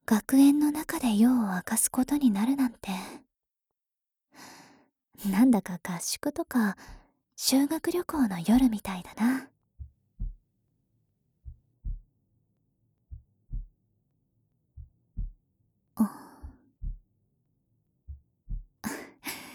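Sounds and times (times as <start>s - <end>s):
speech: 0.1s - 3.2s, 5.2s - 9.5s
heartbeat thumping in lub-dub pairs: 8.5s - 9.0s, 9.8s - 10.4s, 11.4s - 12.1s, 13.1s - 13.8s, 14.8s - 15.4s, 16.0s - 17.1s, 18.1s - 18.8s.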